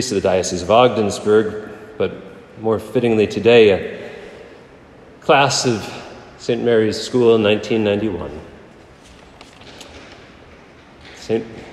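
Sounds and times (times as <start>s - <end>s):
speech: 0.0s - 4.0s, 5.2s - 8.5s, 11.3s - 11.6s
patter of many small children's footsteps at a school: 8.7s - 11.7s.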